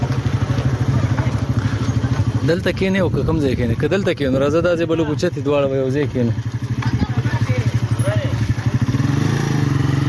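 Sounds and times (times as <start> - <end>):
motorcycle rickshaw engine puttering through a village: 0.0 - 10.0
speech: 2.5 - 6.6.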